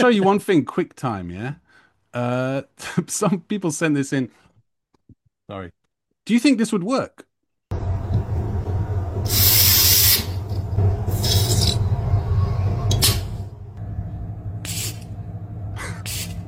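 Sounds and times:
speech: 0.0 - 4.4, 5.5 - 7.3, 9.2 - 9.5
steady low hum: 7.7 - 16.4
gas hissing from a spray can into an empty refillable lighter: 9.3 - 10.4, 11.1 - 11.8, 14.6 - 15.1, 16.0 - 16.4.

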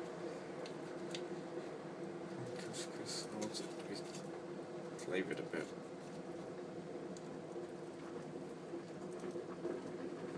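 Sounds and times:
water boiling in a kettle with bubbling and pops: 0.0 - 10.3
speech: 5.1 - 6.0.

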